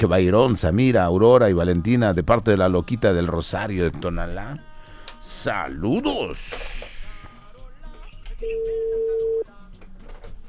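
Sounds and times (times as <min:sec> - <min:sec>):
speech: 0:00.0 - 0:06.9
telephone sounds: 0:03.9 - 0:09.7
steady telephone tone of a call going to voicemail: 0:08.0 - 0:09.4.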